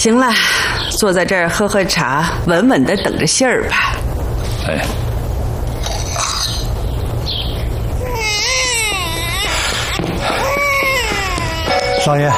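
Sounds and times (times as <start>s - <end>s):
speech: 0.0s - 4.0s, 4.6s - 5.0s, 12.1s - 12.3s
noise: 0.0s - 12.3s
baby crying: 8.0s - 12.3s.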